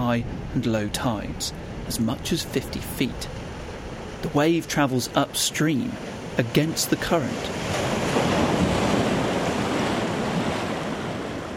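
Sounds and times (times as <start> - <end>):
wind buffeting the microphone beside a river during the tidal bore: 0.0 - 4.2, 7.4 - 11.5
speech: 0.1 - 3.4, 4.2 - 7.9.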